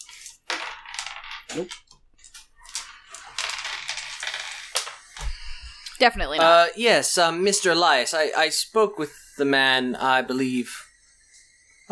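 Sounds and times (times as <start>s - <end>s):
dice being shaken and tumbling across a surface: 0.0s - 5.4s
speech: 1.6s - 1.9s, 6.0s - 10.8s.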